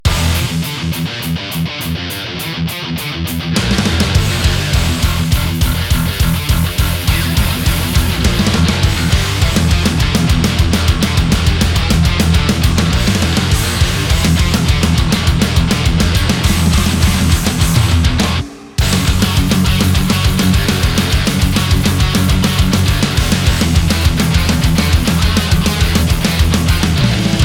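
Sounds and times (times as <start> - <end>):
high-gain guitar through a profiling amplifier: 0.0 - 27.4.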